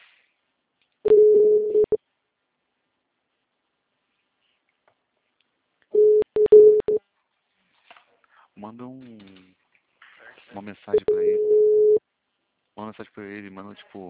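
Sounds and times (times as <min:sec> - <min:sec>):
garbled phone call ringing tone breaking up: 0:01.1 - 0:02.0, 0:06.0 - 0:07.0, 0:11.0 - 0:12.0
speech: 0:08.6 - 0:09.6, 0:10.4 - 0:11.7, 0:12.8 - 0:14.0.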